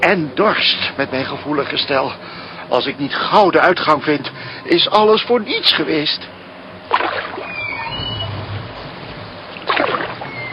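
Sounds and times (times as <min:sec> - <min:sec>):
speech: 0:00.0 - 0:07.0
oar or rowboat hull splashing: 0:06.9 - 0:07.6, 0:09.5 - 0:10.5
flowing river water: 0:06.9 - 0:10.5.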